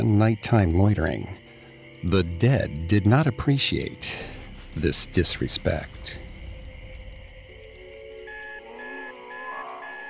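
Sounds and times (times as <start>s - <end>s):
speech: 0.0s - 1.4s, 2.0s - 6.2s
low droning hum: 4.3s - 8.6s
alarm clock beeping in short electronic bursts: 8.2s - 10.0s.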